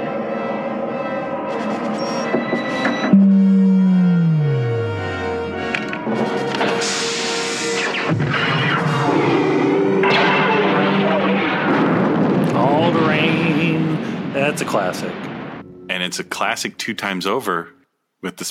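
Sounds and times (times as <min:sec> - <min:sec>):
descending electronic tone of a sci-fi superlaser blast: 0:00.0 - 0:16.7
sci-fi planet explosion with rumbling blasts and crackling roars: 0:08.0 - 0:15.8
speech: 0:14.8 - 0:15.3, 0:16.1 - 0:18.4.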